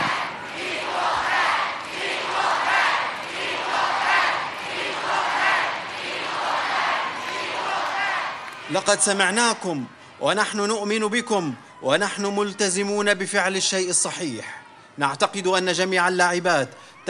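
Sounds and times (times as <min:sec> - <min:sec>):
stadium crowd chanting in unison: 0:00.0 - 0:11.7
speech: 0:08.7 - 0:17.0.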